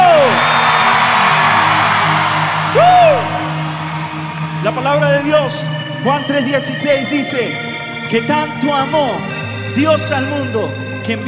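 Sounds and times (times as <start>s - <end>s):
rising whoops: 0.0s - 4.6s
large crowd roaring and shouting together: 0.0s - 5.3s
speech: 4.7s - 11.2s.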